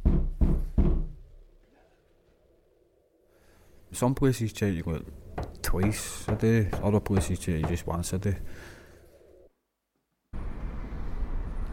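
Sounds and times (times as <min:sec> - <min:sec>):
heavy knocking on a door: 0:00.0 - 0:01.2, 0:05.4 - 0:07.9
speech: 0:04.0 - 0:08.8.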